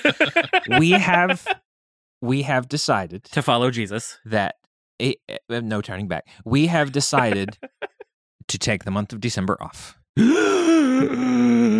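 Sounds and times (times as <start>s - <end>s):
laughter: 0.0s - 1.6s, 6.7s - 8.0s
speech: 0.0s - 1.6s, 2.2s - 11.7s
person letting out a theatrical shocked gasp and wavering moan: 10.2s - 11.7s.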